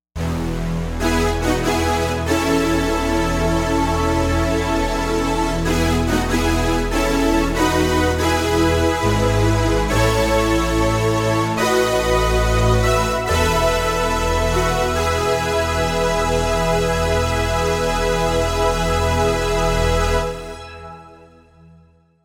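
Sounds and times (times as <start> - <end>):
synthesizer brass hold sweep on Roland Jupiter-80: 0.2 - 21.5.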